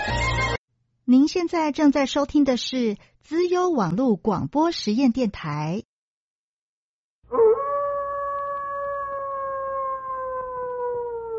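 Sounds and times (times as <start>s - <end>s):
speech: 1.1s - 5.9s
wolf howl: 7.3s - 11.3s.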